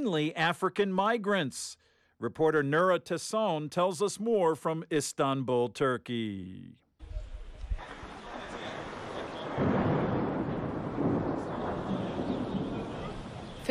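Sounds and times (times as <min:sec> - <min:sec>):
speech: 0:00.0 - 0:06.8
thunder rumbling over a stadium: 0:07.0 - 0:13.6.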